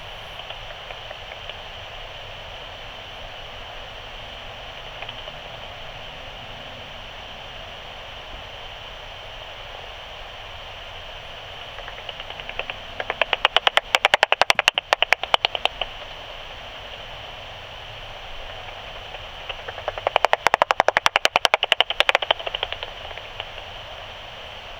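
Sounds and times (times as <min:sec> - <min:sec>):
common pipistrelle echolocation calls in a back garden: 0:00.0 - 0:01.2, 0:11.2 - 0:16.3, 0:18.0 - 0:24.4.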